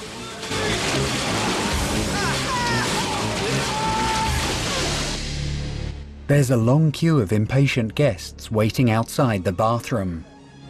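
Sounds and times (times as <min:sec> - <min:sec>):
water sloshing and splashing as a person is dragged through it: 0:00.0 - 0:05.4
speech: 0:06.3 - 0:10.3.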